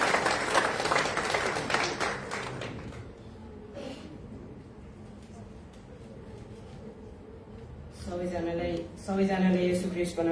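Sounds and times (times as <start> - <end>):
audience applause at a church gathering: 0.0 - 3.2
speech: 8.4 - 10.3.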